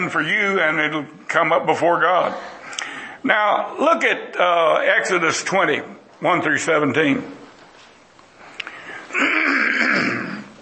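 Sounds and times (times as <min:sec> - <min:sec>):
speech: 0:00.0 - 0:02.6, 0:03.2 - 0:07.4
person clearing throat: 0:09.1 - 0:10.6.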